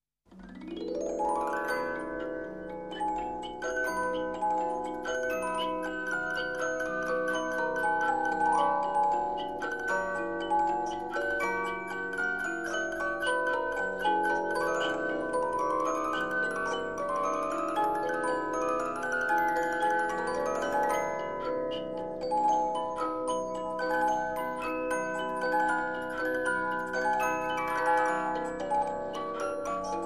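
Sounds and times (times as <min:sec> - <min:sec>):
music box with zither: 0:00.3 - 0:30.0.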